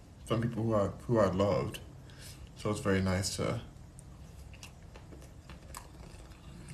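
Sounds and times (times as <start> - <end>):
speech: 0.3 - 1.9, 2.6 - 3.7
crisp crunching and chewing food: 3.9 - 6.7.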